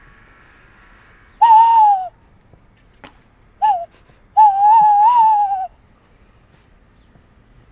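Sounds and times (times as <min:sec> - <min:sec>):
hand-cupped whistled imitation of an agitated tawny owl: 0:01.4 - 0:02.2, 0:03.6 - 0:05.8.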